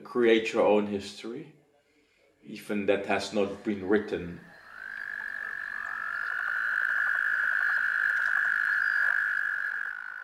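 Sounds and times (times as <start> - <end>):
speech: 0.1 - 1.6, 2.4 - 4.5
toads calling in a mating chorus: 3.2 - 10.2.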